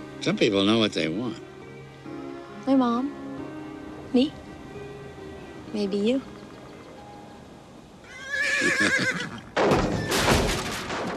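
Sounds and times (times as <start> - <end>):
speech: 0.2 - 1.5, 2.6 - 3.2, 4.1 - 4.4, 5.7 - 6.3, 8.6 - 9.8
horse in a barn whinnying: 8.0 - 10.2.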